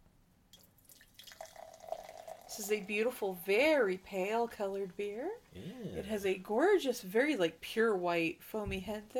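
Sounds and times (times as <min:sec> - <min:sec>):
beer pouring into a glass in a gurgling stream: 0:00.6 - 0:03.1
speech: 0:02.6 - 0:09.1.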